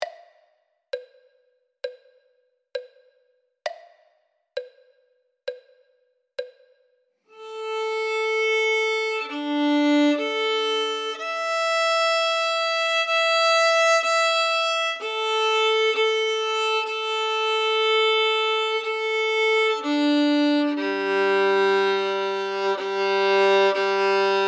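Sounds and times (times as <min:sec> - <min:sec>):
first violin playing: 0:07.3 - 0:24.4.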